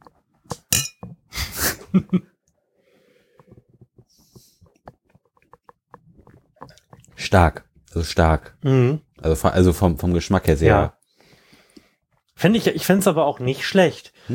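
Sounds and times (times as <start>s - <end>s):
beer glasses clinking together in a toast: 0.5s - 1.1s
speech: 2.0s - 2.4s, 7.3s - 11.0s, 12.4s - 14.3s
quieter scattered taps: 3.4s - 7.2s.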